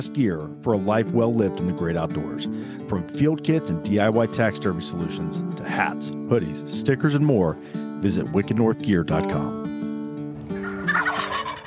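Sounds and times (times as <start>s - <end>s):
speech: 0.0s - 9.7s
wild turkey gobbling with a rapid rattling warble: 10.6s - 11.6s.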